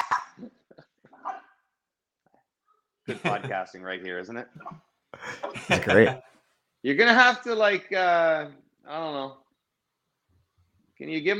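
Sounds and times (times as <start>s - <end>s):
dogs barking outside: 1.2s - 1.6s
laughter: 3.1s - 3.6s, 5.2s - 6.2s
speech: 3.1s - 9.4s, 11.0s - 11.3s.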